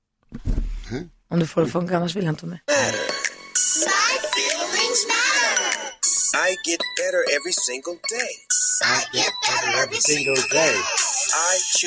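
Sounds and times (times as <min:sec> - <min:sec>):
speech: 0:00.3 - 0:03.1, 0:06.4 - 0:11.8
upbeat motivational children's rap song over a bouncy beat: 0:02.7 - 0:11.8.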